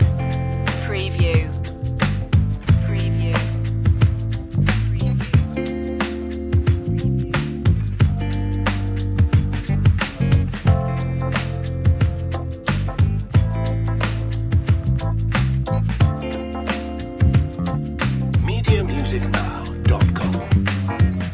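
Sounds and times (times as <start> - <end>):
jazzy chill relax chill hop loop: 0.0 - 21.3.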